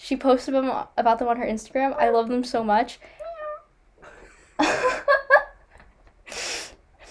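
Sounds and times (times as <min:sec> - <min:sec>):
speech: 0:00.1 - 0:03.2
person imitating a cat meow: 0:03.2 - 0:03.6
laughter: 0:04.1 - 0:05.6.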